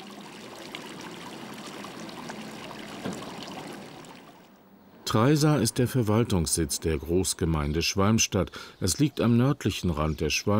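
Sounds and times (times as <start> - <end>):
water burbling from a bubbling fountain within old town walls: 0.0 - 4.4
speech: 5.1 - 10.5.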